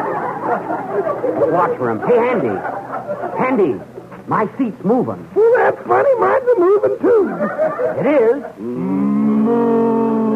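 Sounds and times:
laughter: 0:00.0 - 0:04.2, 0:05.4 - 0:10.3
speech: 0:00.6 - 0:09.9
cow mooing: 0:08.6 - 0:09.8.

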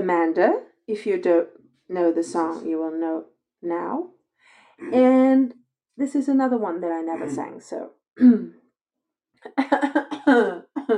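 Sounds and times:
speech: 0:00.0 - 0:04.2, 0:04.8 - 0:08.6, 0:09.4 - 0:10.9
person clearing throat: 0:07.2 - 0:07.4, 0:10.0 - 0:10.9
coughing: 0:09.6 - 0:10.9.

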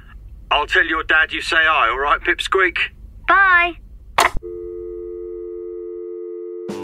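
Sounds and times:
speech: 0:00.6 - 0:03.8
steady electronic telephone busy tone after call ends: 0:04.4 - 0:06.7.

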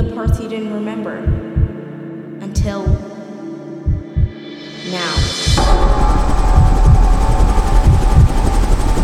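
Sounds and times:
speech: 0:00.2 - 0:01.5, 0:02.7 - 0:03.1
helicopter rotor noise: 0:05.5 - 0:09.0.

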